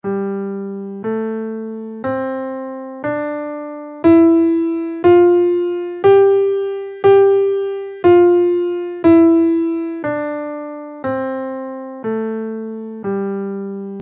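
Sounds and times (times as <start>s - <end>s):
dominant sus scale in G: 2.0s - 14.0s.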